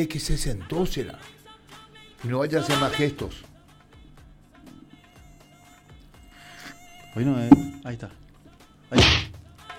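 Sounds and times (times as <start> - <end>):
speech: 0.0 - 1.4, 2.2 - 3.5, 7.2 - 8.2, 8.9 - 9.2
mosquito buzzing inside a booth: 5.1 - 7.6
faint rhythmic low thumps: 7.5 - 7.9.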